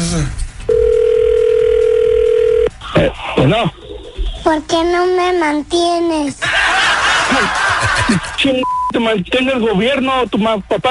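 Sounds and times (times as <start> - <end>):
speech: 0.1 - 0.4, 3.0 - 3.8, 4.4 - 6.6, 7.3 - 10.8
telephone ringback tone while placing a call: 0.7 - 2.7
laughter: 6.4 - 8.5.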